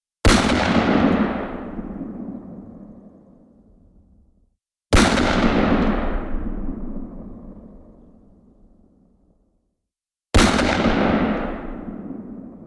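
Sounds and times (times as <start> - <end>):
magnum gunshots: 0.3 - 2.2, 4.9 - 7.2, 10.4 - 12.6.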